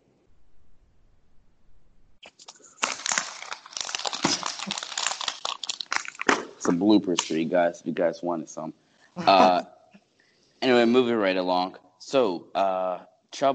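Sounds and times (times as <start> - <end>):
sheet of paper being noisily handled and turned: 2.2 - 7.4
laughter: 6.6 - 9.6, 10.6 - 13.5
speech: 6.7 - 9.7, 10.8 - 13.5.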